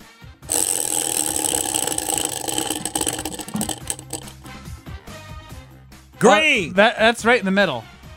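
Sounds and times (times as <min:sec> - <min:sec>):
prize wheel pointer clattering in a party game: 0:00.5 - 0:04.6
speech: 0:06.2 - 0:07.9.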